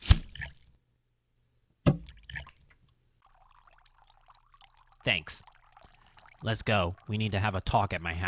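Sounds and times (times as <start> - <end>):
water being poured: 0.0 - 0.7, 1.9 - 8.2
speech: 5.0 - 5.5, 6.4 - 8.2.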